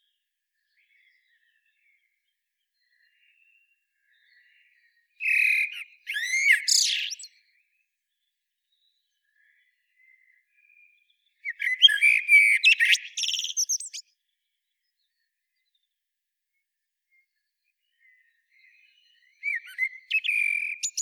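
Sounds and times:
Eurasian blackbird Turdus merula singing: 2.8s - 7.4s, 11.4s - 14.1s, 17.8s - 21.0s.

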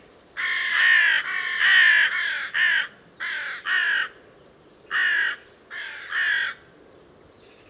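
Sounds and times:
carrion crow Corvus corone cawing: 0.4s - 4.2s, 4.9s - 6.6s.

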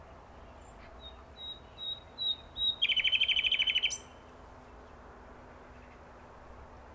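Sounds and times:
common nightingale Luscinia megarhynchos singing whistles and rattling trill: 0.4s - 4.3s.

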